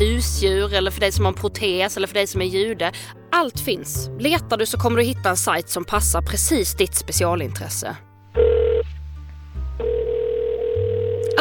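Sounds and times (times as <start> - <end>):
speech: 0.2 - 8.5
telephone tone while placing a call: 8.4 - 8.8, 9.8 - 11.3.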